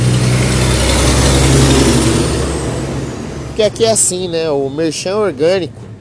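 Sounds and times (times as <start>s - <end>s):
small truck driving past outside: 0.0s - 4.6s
speech: 3.6s - 5.9s.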